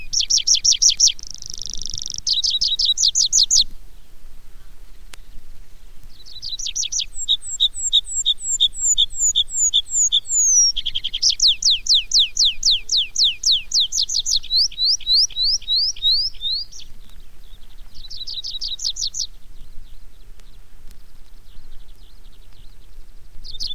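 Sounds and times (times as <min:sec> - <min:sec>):
tree pipit song: 0:00.0 - 0:23.7.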